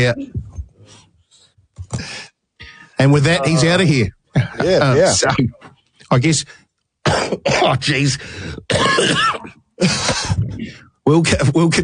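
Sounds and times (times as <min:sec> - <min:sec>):
speech: 0:00.0 - 0:01.0, 0:03.0 - 0:11.8
person coughing and clearing throat: 0:07.1 - 0:07.8, 0:08.6 - 0:10.6.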